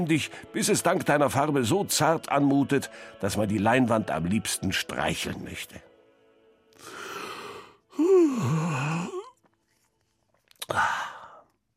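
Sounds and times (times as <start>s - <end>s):
speech: 0.0s - 5.9s, 8.0s - 9.1s
man sighing: 6.8s - 9.4s, 10.6s - 11.5s
man yawning: 7.9s - 9.4s, 10.6s - 11.4s.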